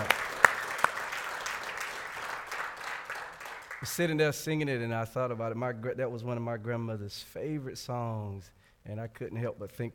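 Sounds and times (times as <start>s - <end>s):
audience applauding in praise: 0.0s - 4.2s
speech: 3.8s - 9.9s.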